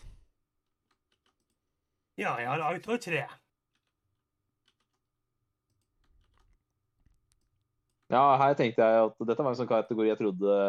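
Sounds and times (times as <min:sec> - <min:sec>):
typing on a computer keyboard: 0:00.8 - 0:01.6, 0:04.6 - 0:05.0, 0:05.7 - 0:08.1
speech: 0:02.2 - 0:03.4, 0:08.1 - 0:10.6.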